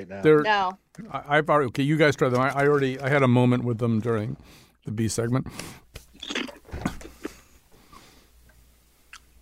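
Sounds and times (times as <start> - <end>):
speech: 0.0 - 5.8
people crunching potato chips: 6.1 - 6.7.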